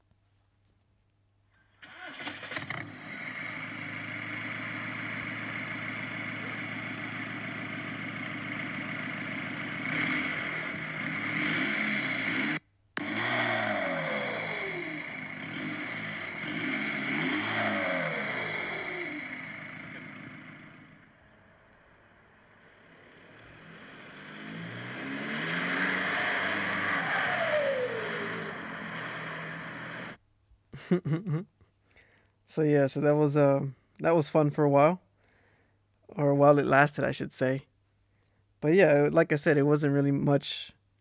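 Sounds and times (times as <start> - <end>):
straight-piped diesel car engine idling and revving: 2.2 - 30.2
laughter: 30.8 - 31.5
speech: 30.9 - 31.5, 32.5 - 35.0, 36.2 - 37.7, 38.6 - 40.8.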